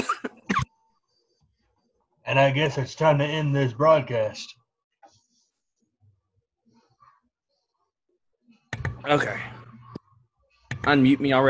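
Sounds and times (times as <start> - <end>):
person coughing: 0.0 - 0.7
speech: 2.3 - 4.6, 9.0 - 9.5, 10.8 - 11.4.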